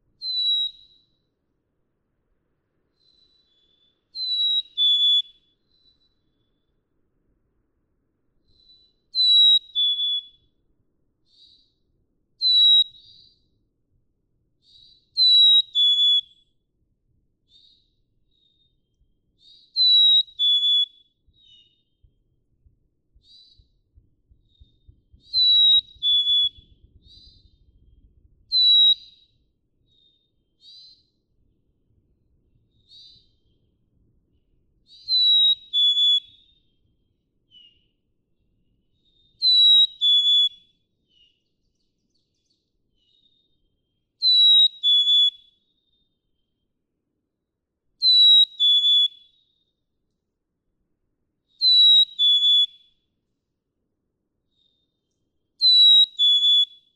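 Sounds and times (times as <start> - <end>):
pitch-shifted black-capped chickadee call retaining melody: 9.2 - 10.3, 15.2 - 16.3, 19.8 - 21.0, 25.4 - 26.6, 28.6 - 29.2, 35.0 - 36.4, 39.4 - 40.6, 44.2 - 45.4, 48.0 - 49.2, 51.6 - 52.8, 55.6 - 56.8.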